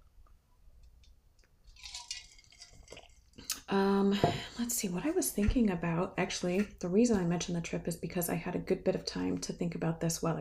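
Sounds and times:
sipping a drink with a wet slurp and gulp: 1.7 - 3.7
speech: 3.7 - 10.3.

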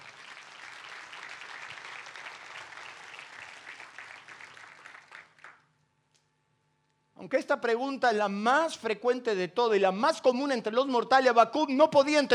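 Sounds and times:
audience applauding loudly: 0.0 - 5.6
speech: 7.2 - 12.3.

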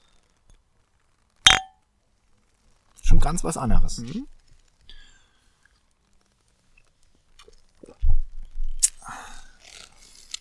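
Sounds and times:
drinking glass clinking as it is handed over: 1.5 - 1.8
speech: 3.2 - 4.3.

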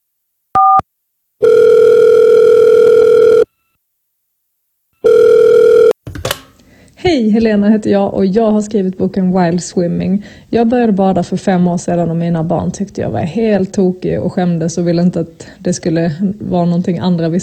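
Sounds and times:
two-tone telephone dialing beeps: 0.6 - 0.8, 1.4 - 3.5, 5.0 - 5.9
speech: 7.0 - 17.3.

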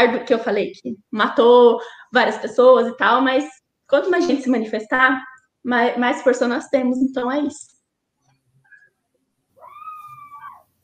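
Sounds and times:
speech: 0.0 - 7.7
cat yowling: 9.6 - 10.8.

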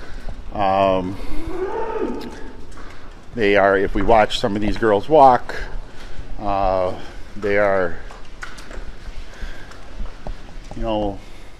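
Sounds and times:
speech: 0.6 - 2.6, 3.4 - 5.8, 6.4 - 8.1, 10.8 - 11.3
dairy cows mooing in a barn: 1.1 - 2.8.

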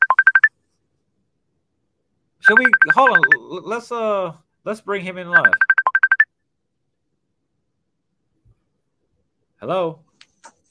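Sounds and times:
phone ringtone electronic beeps: 0.0 - 0.5, 2.4 - 3.4, 5.4 - 6.3
speech: 2.5 - 5.7, 9.6 - 10.1.

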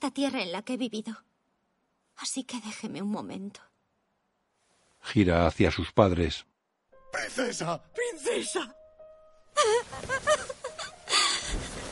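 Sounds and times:
speech: 0.0 - 1.3, 2.2 - 3.7, 5.0 - 6.5, 7.1 - 8.8, 9.6 - 10.5
woman crying and wailing while running: 9.5 - 11.8.

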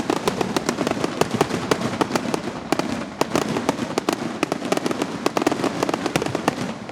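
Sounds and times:
fireworks finale bursting: 0.0 - 6.9.

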